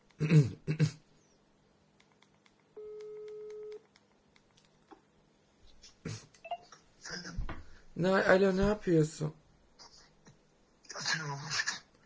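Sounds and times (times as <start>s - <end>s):
speech: 0.2s - 0.8s, 8.0s - 9.4s
phone ringback tone: 2.8s - 3.8s.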